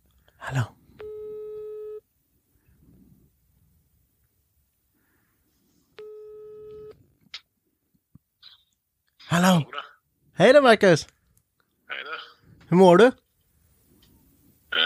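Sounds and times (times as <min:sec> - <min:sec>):
speech: 0:00.5 - 0:00.8, 0:10.4 - 0:11.2, 0:12.7 - 0:13.2
telephone ringback tone while a call is placed: 0:01.0 - 0:02.0, 0:06.0 - 0:07.0.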